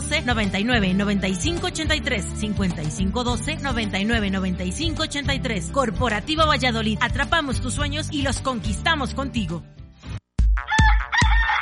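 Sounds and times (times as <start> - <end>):
speech: 0.2 - 9.8
rooster crowing: 10.7 - 11.6.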